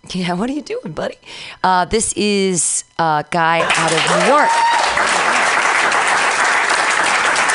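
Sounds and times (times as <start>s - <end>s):
speech: 0.1s - 5.4s
large crowd applauding at a venue: 3.6s - 7.5s.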